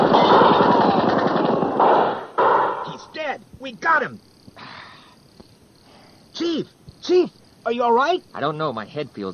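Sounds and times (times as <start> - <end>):
rapid gunfire in a staged police shootout: 0.0 - 3.1
speech: 3.7 - 4.3, 6.4 - 9.3.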